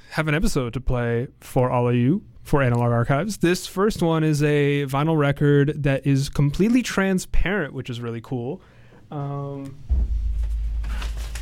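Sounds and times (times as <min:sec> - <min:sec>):
speech: 0:00.2 - 0:09.9
paper being grabbed and rustled: 0:10.4 - 0:11.4.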